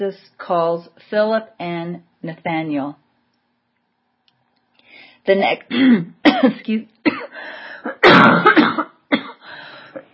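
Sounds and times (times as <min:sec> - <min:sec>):
speech: 0:00.0 - 0:03.0, 0:05.2 - 0:07.6
person coughing and clearing throat from a piece of nut stuck in throat: 0:05.7 - 0:09.4.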